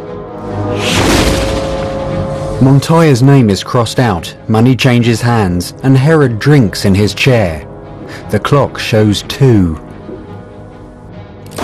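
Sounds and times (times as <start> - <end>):
steady low tone: 0.0 - 11.4
gunshot during a town gun contest: 0.8 - 1.9
speech: 2.6 - 7.7, 8.3 - 9.8.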